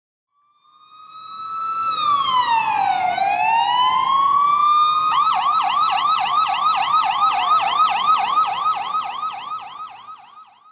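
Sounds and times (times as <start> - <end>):
police siren in Jerusalem wailing and yelping: 0.3 - 10.7.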